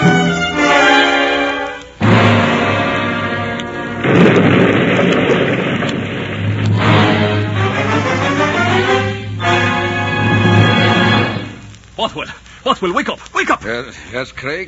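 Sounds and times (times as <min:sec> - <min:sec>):
crackling debris: 0:00.0 - 0:14.6
loud explosion: 0:02.0 - 0:11.7
steady low hum: 0:02.0 - 0:12.0
long roaring rumble: 0:03.9 - 0:11.9
speech: 0:12.8 - 0:14.6.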